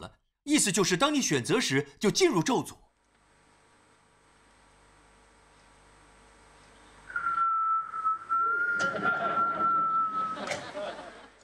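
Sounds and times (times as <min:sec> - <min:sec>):
speech: 0:00.0 - 0:02.9
noise: 0:00.0 - 0:11.4
sustained high whistle: 0:07.1 - 0:10.6
laughter: 0:08.8 - 0:11.4.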